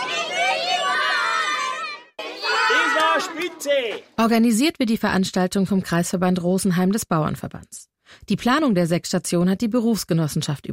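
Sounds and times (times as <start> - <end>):
children shouting together during a farm safety day exercise: 0.0 - 3.9
speech: 3.2 - 10.7.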